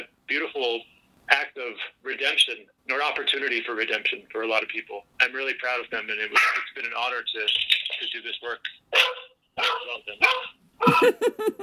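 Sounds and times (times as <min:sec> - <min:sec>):
speech: 0:00.6 - 0:11.6
dog barking and yipping: 0:08.9 - 0:11.1
laughter: 0:10.8 - 0:11.6.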